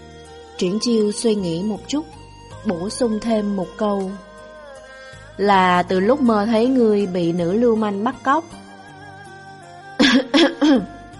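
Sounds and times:
speech: 0.6s - 4.3s, 5.4s - 8.6s, 10.3s - 11.0s
dry coughs: 10.0s - 11.0s.

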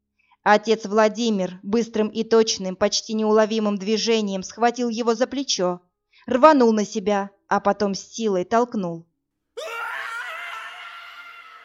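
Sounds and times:
speech: 0.4s - 9.1s
dying man's scream: 9.6s - 11.6s.

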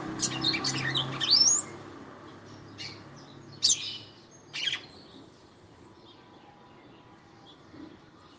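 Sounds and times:
female red-cowled cardinal singing: 0.2s - 1.7s, 3.6s - 4.9s.

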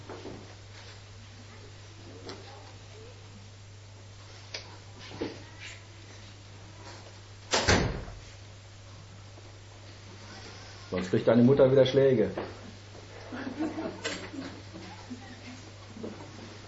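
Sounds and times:
low steady hum: 0.0s - 16.6s
door closing indoors: 7.5s - 8.2s
speech: 10.9s - 12.6s
laughter: 13.2s - 16.5s.

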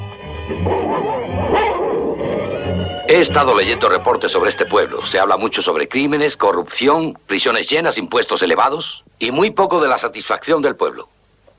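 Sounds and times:
speech: 0.5s - 2.2s, 2.9s - 11.5s
dog barking, yipping and whimpering: 0.6s - 2.8s.

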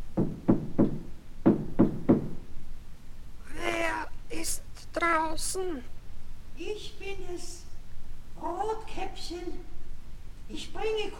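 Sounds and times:
dull low knocks on the door of a grandmother's house: 0.1s - 2.4s
speech: 5.1s - 6.0s, 9.0s - 9.7s, 10.5s - 11.1s.

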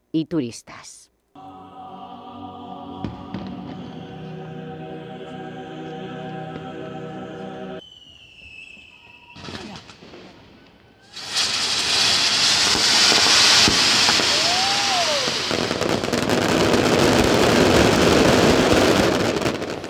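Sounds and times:
speech: 0.1s - 1.1s
gunpowder rockets and firecrackers crackling and hissing in a festival fireworks display: 2.9s - 4.8s, 7.8s - 19.8s.

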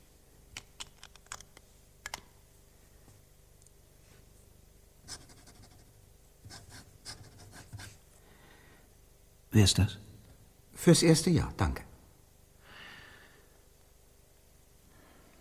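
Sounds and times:
pen scratching on paper while signing a written statement: 5.1s - 8.0s
speech: 9.6s - 10.1s, 10.8s - 11.9s.

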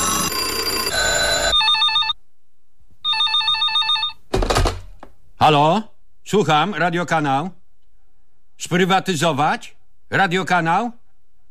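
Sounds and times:
radio station newsroom telephone ringing with electronic warbling tone: 0.0s - 2.2s, 3.0s - 4.3s
speech: 5.4s - 7.6s, 8.6s - 11.0s.

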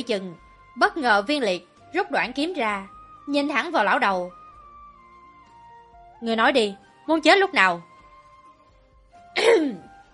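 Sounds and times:
speech: 0.0s - 4.4s, 6.2s - 7.9s
dry throat clearing: 9.4s - 9.9s.

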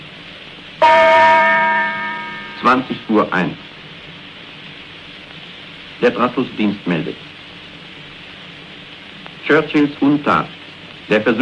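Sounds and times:
German radio time-signal gong strike marking the hour: 0.8s - 3.2s
speech: 2.6s - 3.7s, 6.0s - 7.3s, 9.5s - 11.4s.

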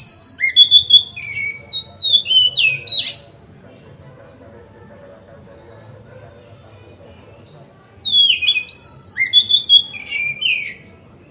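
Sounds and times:
Oriental magpie-robin singing tutored song on a terrace: 0.0s - 3.4s, 8.0s - 10.9s.

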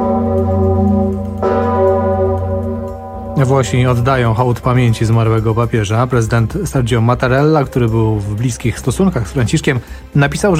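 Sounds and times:
deep church bells tolling from Wawel Cathedral in Kraków for the late pope: 0.0s - 7.2s
speech: 3.4s - 10.5s.

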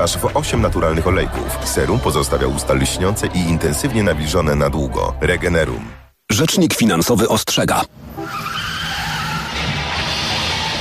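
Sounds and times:
speech: 0.0s - 8.4s
car tyres skidding and screeching in a road accident: 8.1s - 10.8s.

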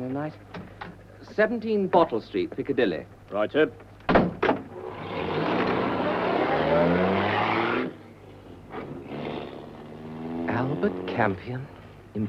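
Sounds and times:
speech: 0.2s - 3.9s, 6.8s - 7.1s, 11.2s - 12.2s
taxi car engine roaring as the vehicle moves: 4.7s - 12.2s.

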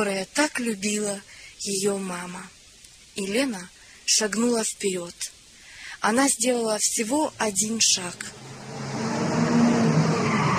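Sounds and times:
speech: 0.0s - 2.6s, 3.2s - 5.4s, 6.0s - 8.5s
car brakes screeching on a quiet street: 8.3s - 10.5s.

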